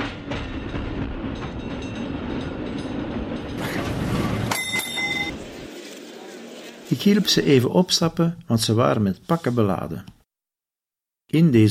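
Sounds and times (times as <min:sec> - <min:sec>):
tram rumbling and slowing to a stop: 0:00.0 - 0:05.8
speech: 0:07.0 - 0:10.2, 0:11.3 - 0:11.6.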